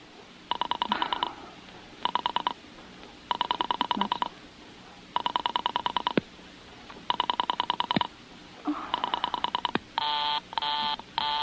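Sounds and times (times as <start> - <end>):
telephone number being dialed with rapid clicking pulses: 0.5 - 1.3, 2.0 - 2.6, 3.3 - 4.3, 5.2 - 6.2, 7.1 - 8.1, 9.0 - 11.4.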